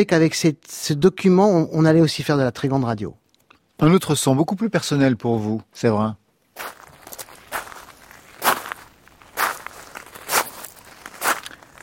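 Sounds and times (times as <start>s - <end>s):
speech: 0.0s - 3.2s, 3.8s - 6.8s
footsteps crunching on gravel at a slow walking pace: 6.6s - 11.8s.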